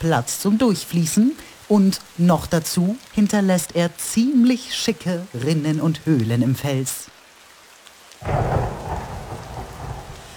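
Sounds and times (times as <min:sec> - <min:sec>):
speech: 0:00.0 - 0:07.1
heavy rain pouring down: 0:00.0 - 0:10.3
deep rumble of thunder: 0:08.2 - 0:10.3.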